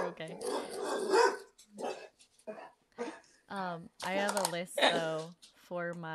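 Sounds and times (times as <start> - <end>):
dog barking: 0.0 - 3.2
speech: 0.2 - 1.4, 3.8 - 6.1.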